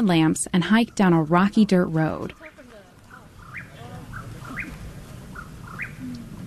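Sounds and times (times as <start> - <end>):
speech: 0.0 - 2.5
Mexican whippoorwill calling at dusk: 0.0 - 6.4
steady hiss of night-time outdoor ambience: 2.0 - 6.4.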